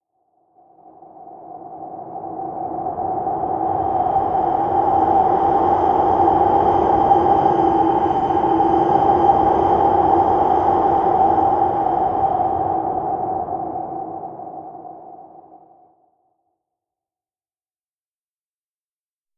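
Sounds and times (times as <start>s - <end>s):
wind across plains: 1.7s - 15.6s.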